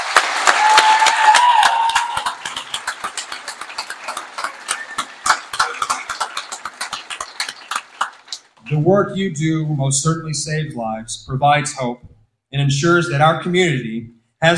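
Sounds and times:
audience applauding: 0.0s - 8.6s
speech: 8.7s - 14.5s.

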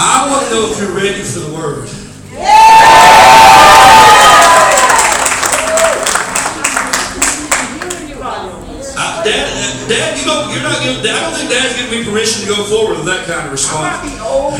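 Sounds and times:
speech: 0.5s - 2.6s, 10.5s - 14.5s
large crowd cheering and shouting with whoops: 2.4s - 6.1s
scattered clapping: 4.4s - 8.0s.

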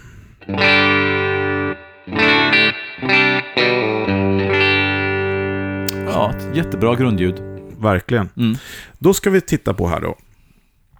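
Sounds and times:
distorted electric guitar through an amp-in-a-box pedal emulating a deluxe amplifier: 0.4s - 7.8s
speech: 6.6s - 10.2s.

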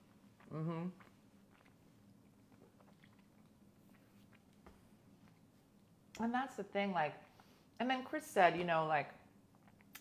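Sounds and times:
person chewing food: 0.0s - 5.5s
person humming: 0.5s - 1.0s
speech: 0.5s - 1.1s, 6.2s - 9.2s.

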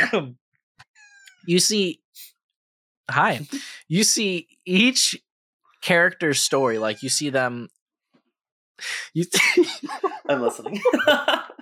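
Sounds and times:
speech: 0.1s - 0.4s, 1.4s - 2.3s, 3.1s - 5.2s, 5.8s - 7.8s, 8.8s - 11.6s
cat meowing: 0.9s - 1.4s, 6.4s - 7.2s
laughter: 9.2s - 11.6s.

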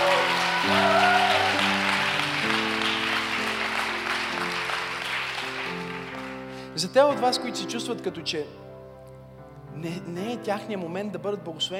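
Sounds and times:
crowd applauding in a large room: 0.0s - 6.8s
speech: 6.8s - 8.6s, 9.8s - 11.7s.

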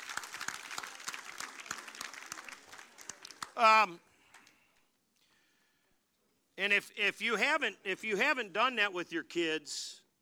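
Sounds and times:
audience applauding: 0.0s - 4.5s
speech: 3.6s - 4.1s, 6.6s - 10.0s.

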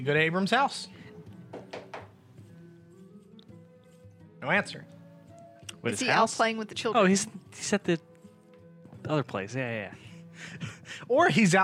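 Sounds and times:
speech: 0.0s - 1.0s, 4.4s - 5.0s, 5.8s - 8.1s, 9.1s - 11.6s
knocking on a door: 1.5s - 2.2s.

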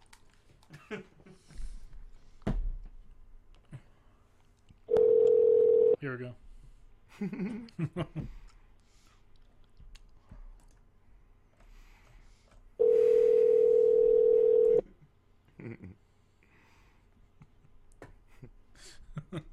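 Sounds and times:
speech: 0.9s - 1.2s, 6.0s - 6.4s, 7.2s - 8.4s
steady electronic phone tone of a phone call being placed: 4.9s - 6.0s, 12.8s - 14.8s.

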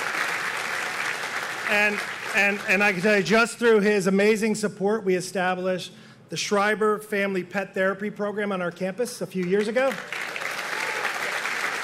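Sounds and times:
crowd applauding: 0.0s - 3.4s, 9.4s - 11.8s
speech: 1.7s - 10.2s.

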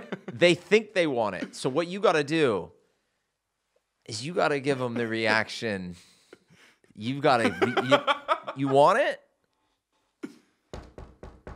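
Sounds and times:
laughter: 0.0s - 0.6s, 4.6s - 5.6s, 7.2s - 9.1s
speech: 0.4s - 2.8s, 4.0s - 6.1s, 7.0s - 9.2s
knocking on a door: 10.8s - 11.5s.

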